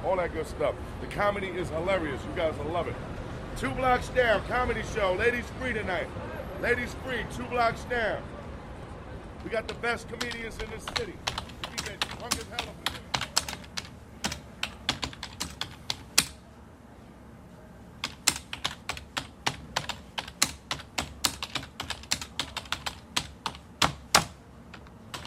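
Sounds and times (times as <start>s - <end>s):
speech: 0.0s - 8.4s, 9.4s - 11.4s
typewriter keys clacking in a newsroom: 9.5s - 16.4s, 18.0s - 25.2s.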